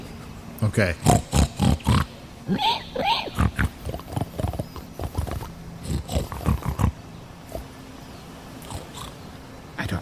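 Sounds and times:
speech: 0:00.6 - 0:01.4, 0:02.5 - 0:03.6
people imitating pig snuffling and snorting with breathy grunts: 0:01.0 - 0:07.0.

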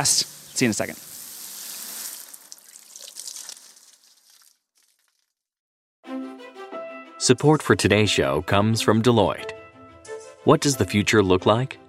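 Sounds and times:
speech: 0:00.0 - 0:01.1, 0:07.2 - 0:09.6, 0:10.4 - 0:11.8
running water splashing while watering the grass: 0:00.0 - 0:05.2.

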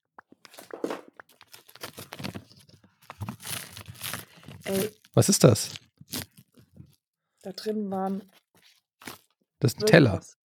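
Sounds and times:
paper packaging being torn open: 0:00.5 - 0:07.0, 0:08.1 - 0:09.3
speech: 0:04.7 - 0:05.8, 0:07.5 - 0:08.4, 0:09.6 - 0:10.4.

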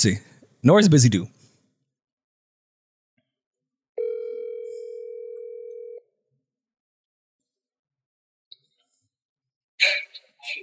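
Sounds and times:
speech: 0:00.0 - 0:01.4
outgoing phone call ringing tone: 0:04.0 - 0:06.2.

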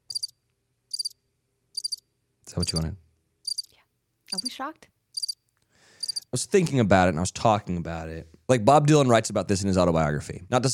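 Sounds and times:
high buzzy cricket chirps: 0:00.0 - 0:01.2, 0:01.8 - 0:02.0, 0:02.6 - 0:03.7, 0:05.2 - 0:05.4, 0:06.0 - 0:06.3
speech: 0:02.5 - 0:03.0, 0:04.3 - 0:05.0, 0:06.3 - 0:10.7.

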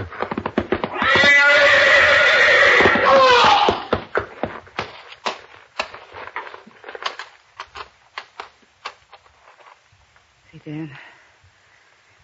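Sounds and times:
horse hoofbeats and stamping in a stall: 0:00.0 - 0:09.6
horse in a stall whinnying: 0:00.6 - 0:04.0.

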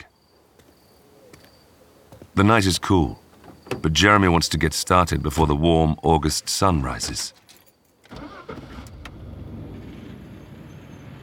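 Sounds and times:
speech: 0:02.4 - 0:03.2, 0:03.8 - 0:07.4
truck engine cranking and starting: 0:08.1 - 0:11.2.

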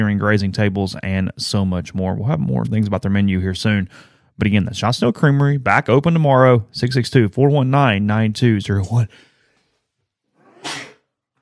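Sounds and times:
speech: 0:00.0 - 0:09.3
sneeze: 0:10.4 - 0:11.1.

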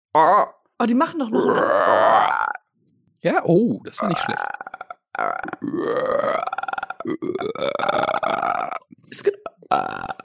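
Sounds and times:
person imitating frog croaks with gravelly belch-like vocal sounds: 0:00.1 - 0:00.7, 0:01.3 - 0:02.7, 0:04.0 - 0:10.2
speech: 0:00.2 - 0:02.3, 0:03.2 - 0:10.2.

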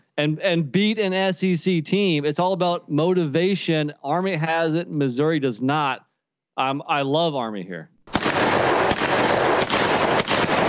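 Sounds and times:
speech: 0:00.2 - 0:07.9
cannon booming: 0:08.1 - 0:10.6.

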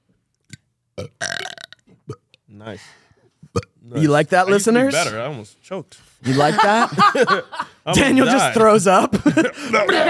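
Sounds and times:
person burping loudly: 0:00.5 - 0:02.2, 0:03.4 - 0:05.1
speech: 0:02.6 - 0:03.0, 0:03.9 - 0:10.0
laughter: 0:06.2 - 0:10.0.

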